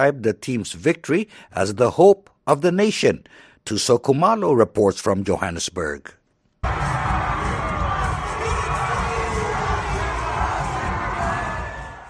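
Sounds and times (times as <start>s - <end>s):
speech: 0.0s - 6.9s
dense loud crowd roaring in an echoing indoor arrivals hall: 6.6s - 12.0s
high screams in an arrivals hall: 6.6s - 12.0s.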